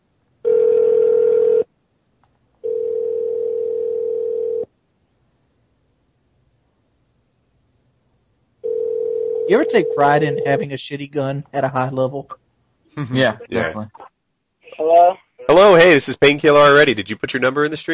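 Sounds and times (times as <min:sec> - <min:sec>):
telephone ringback tone while a call waits to be answered: 0:00.4 - 0:01.6, 0:02.6 - 0:04.7, 0:08.6 - 0:10.6
speech: 0:09.5 - 0:12.4, 0:13.0 - 0:14.0, 0:14.9 - 0:17.9.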